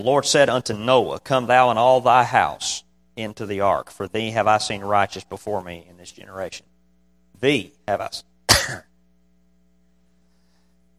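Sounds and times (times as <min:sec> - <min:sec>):
speech: 0:00.0 - 0:06.7, 0:07.4 - 0:08.9
faint steady low hum: 0:00.0 - 0:10.9
throat clearing: 0:08.5 - 0:08.9.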